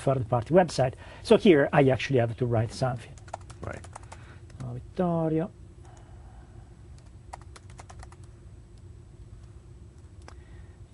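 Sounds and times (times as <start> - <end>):
speech: 0.0 - 4.0, 4.6 - 5.6
typing on a computer keyboard filling in a website registration form: 3.2 - 4.8, 7.0 - 8.3
steady low hum: 3.4 - 10.9.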